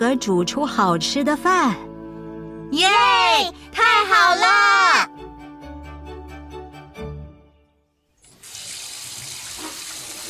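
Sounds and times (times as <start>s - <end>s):
speech: 0.0s - 1.9s, 2.7s - 4.6s
tap water running into a container for rinsing rice: 8.2s - 10.2s.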